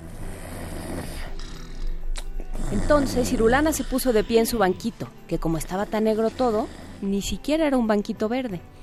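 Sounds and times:
loud deep snoring: 0.0s - 4.7s, 5.5s - 7.4s
speech: 2.7s - 8.7s.

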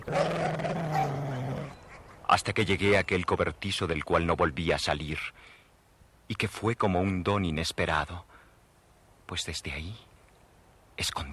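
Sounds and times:
dog snarling and growling: 0.0s - 1.8s
speech: 2.4s - 5.5s, 6.3s - 8.3s, 9.3s - 10.1s, 11.0s - 11.3s.

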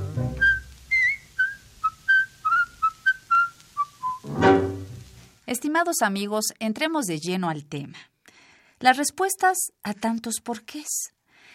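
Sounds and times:
rustle: 0.0s - 5.5s
person whistling a short tune: 0.4s - 4.3s
speech: 5.5s - 8.1s, 8.8s - 11.5s.

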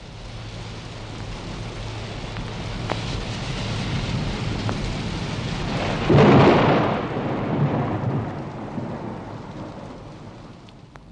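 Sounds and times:
steady rain in a rainstorm: 0.0s - 11.1s
deep rumble of thunder: 2.4s - 11.1s.

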